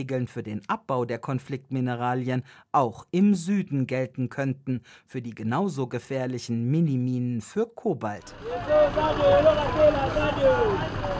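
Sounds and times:
speech: 0:00.0 - 0:11.1
dense rush-hour street traffic of cars, buses and trucks rumbling: 0:08.2 - 0:11.1.

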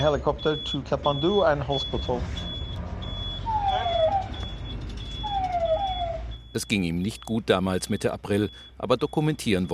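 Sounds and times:
speech: 0:00.0 - 0:02.5, 0:06.6 - 0:09.7
ambulance siren wailing in Kathmandu: 0:00.0 - 0:07.1
high beep: 0:00.0 - 0:09.7
road noise from inside the ambulance: 0:00.0 - 0:09.7.

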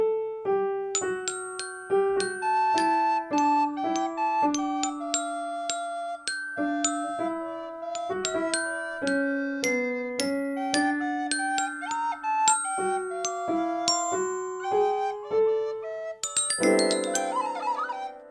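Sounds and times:
piano playing a bright melody: 0:00.0 - 0:18.2
glockenspiel bell-like chimes: 0:01.0 - 0:18.2
flute playing a bright melody: 0:02.2 - 0:18.2.

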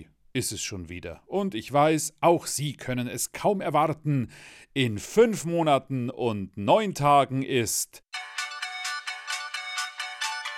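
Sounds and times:
speech: 0:00.4 - 0:08.0
phone ringtone playing a bright electronic Christmas melody: 0:08.2 - 0:10.5.

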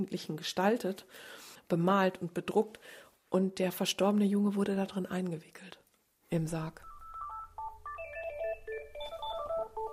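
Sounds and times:
speech: 0:00.0 - 0:06.9
telephone with a handset ringing with an electronic ringtone: 0:06.8 - 0:09.9.

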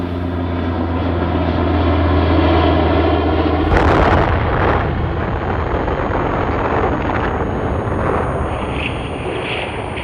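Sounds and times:
American propeller aircraft engine droning: 0:00.0 - 0:10.0
atomic bomb explosion over Hiroshima: 0:03.6 - 0:09.2
rolling rumble of debris: 0:03.6 - 0:09.8.

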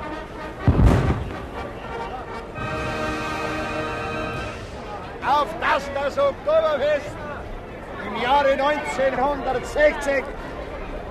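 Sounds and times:
brass band playing a march: 0:00.0 - 0:05.1
crowd hum: 0:00.0 - 0:11.1
ceremonial salute cannon shot outdoors: 0:00.6 - 0:01.8
speech: 0:05.8 - 0:07.2, 0:08.2 - 0:10.4.

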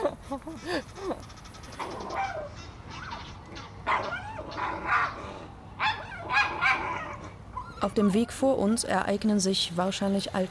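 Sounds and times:
speech: 0:00.3 - 0:03.0, 0:07.8 - 0:10.5
dog barking and yipping: 0:01.8 - 0:05.2, 0:05.8 - 0:07.9.

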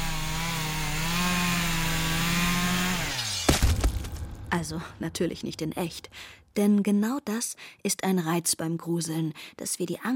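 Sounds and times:
chainsaw engine droning: 0:00.0 - 0:03.5
sharp chainsaw cutting noise: 0:00.0 - 0:05.2
speech: 0:04.5 - 0:10.1.

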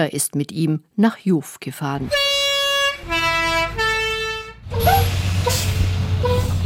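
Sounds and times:
speech: 0:00.0 - 0:02.4
yellow Swiss post bus three-note horn: 0:02.0 - 0:06.6
post bus low engine rumble: 0:02.1 - 0:06.6.

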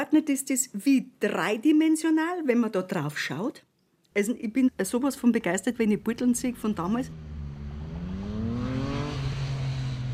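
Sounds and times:
speech: 0:00.0 - 0:07.3
road traffic rumbling as cars cross a bridge: 0:04.7 - 0:10.1
car engine droning and accelerating past: 0:05.7 - 0:10.1.

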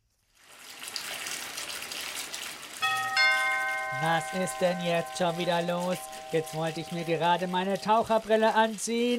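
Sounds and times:
water running steadily: 0:00.4 - 0:09.1
bright electronic doorbell chime: 0:02.8 - 0:07.6
speech: 0:04.0 - 0:09.1.

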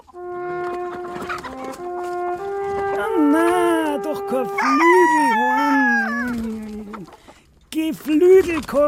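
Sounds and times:
steady tonal hum: 0:00.0 - 0:06.6
hungry hens clucking: 0:00.0 - 0:08.8
speech: 0:08.6 - 0:08.8.

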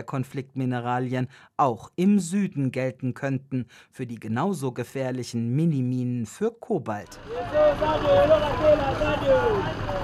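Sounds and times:
speech: 0:00.0 - 0:10.0
dense rush-hour traffic of cars, buses and trucks on a four-lane road: 0:07.1 - 0:10.0.

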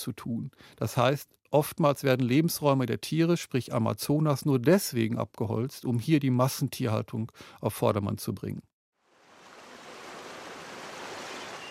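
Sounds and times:
speech: 0:00.0 - 0:08.7
sea waves washing onto the North Sea coast: 0:09.1 - 0:11.6.

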